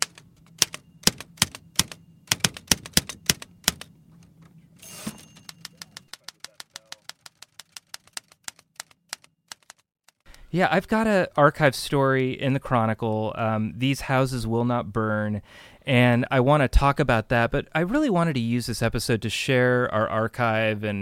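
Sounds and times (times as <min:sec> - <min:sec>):
manual typewriter clacking in a newspaper archive: 0:00.0 - 0:03.9, 0:05.1 - 0:10.2
speech: 0:10.5 - 0:21.0.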